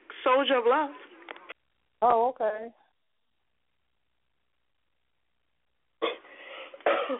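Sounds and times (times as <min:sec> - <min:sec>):
speech: 0:00.2 - 0:01.0, 0:02.0 - 0:02.8
harsh cough in a coughing fit: 0:06.0 - 0:07.1
raspy wheezy breathing: 0:06.2 - 0:06.9.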